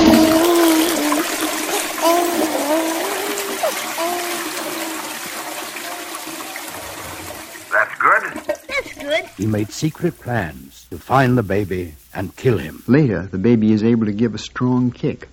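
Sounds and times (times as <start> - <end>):
toilet flushing: 0.0 - 12.8
speech: 9.4 - 15.3.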